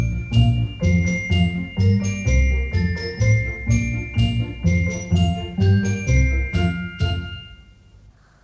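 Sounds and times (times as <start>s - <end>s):
small bell ringing with bright tinkling strikes: 0.0s - 8.0s.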